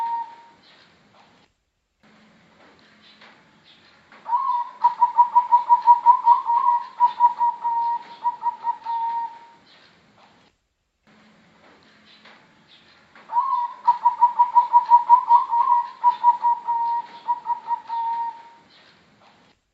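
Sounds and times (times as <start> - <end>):
Bangkok type zebra dove singing quick evenly pulsed coos: 0.0 - 0.6, 4.3 - 9.6, 13.3 - 18.6.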